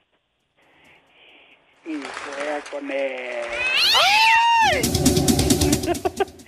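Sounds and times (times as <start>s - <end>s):
speech: 1.8s - 5.1s
long wavering cat meow: 3.5s - 4.8s.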